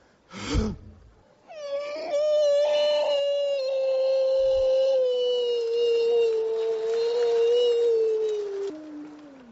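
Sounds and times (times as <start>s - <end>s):
person imitating a wolf howl as a vocal warm-up: 1.5s - 9.5s.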